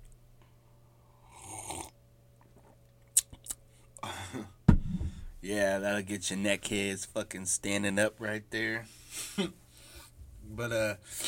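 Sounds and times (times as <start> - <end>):
person slurping hot tea: 1.3 - 1.9
speech: 5.5 - 9.6, 10.6 - 11.2.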